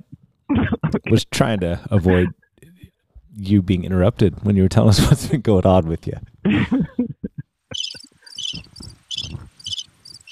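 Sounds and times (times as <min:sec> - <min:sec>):
speech: 0:00.9 - 0:02.4, 0:03.4 - 0:06.9
crickets chirping: 0:07.8 - 0:10.3.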